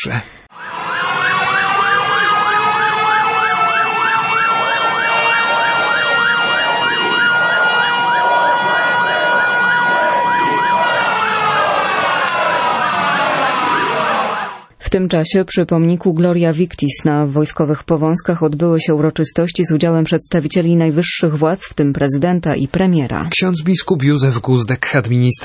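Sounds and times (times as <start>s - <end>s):
speech: 0.0s - 0.5s, 14.9s - 25.4s
air raid sirens sounding: 0.5s - 14.7s
low rumble of street noise: 0.5s - 14.7s.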